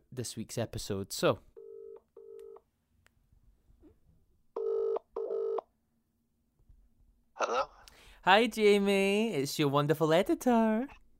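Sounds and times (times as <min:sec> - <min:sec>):
speech: 0:00.2 - 0:01.5, 0:08.2 - 0:11.0
electronic telephone dialing tones: 0:04.6 - 0:05.6.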